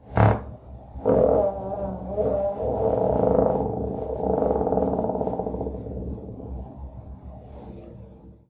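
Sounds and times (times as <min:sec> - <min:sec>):
monster fart: 0:00.0 - 0:06.6.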